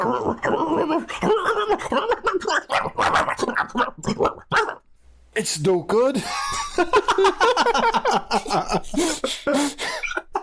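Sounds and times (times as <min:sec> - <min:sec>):
speech: 0:00.0 - 0:04.3, 0:05.4 - 0:08.2
person imitating a dog barking, yelping and howling: 0:00.0 - 0:04.8
laughter: 0:06.2 - 0:10.4.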